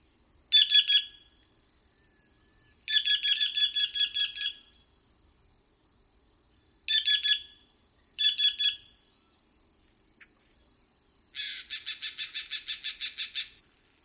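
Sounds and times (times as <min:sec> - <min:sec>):
steady high insect drone: 0:00.0 - 0:14.0
Green Jay calling with rapid ringing rattled notes: 0:02.9 - 0:04.6, 0:06.9 - 0:07.5, 0:08.2 - 0:08.9, 0:11.4 - 0:14.0.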